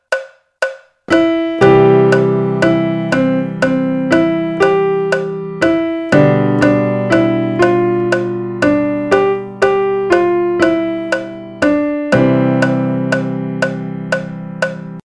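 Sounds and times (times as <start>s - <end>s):
music track at 120 BPM: 0.1s - 15.0s.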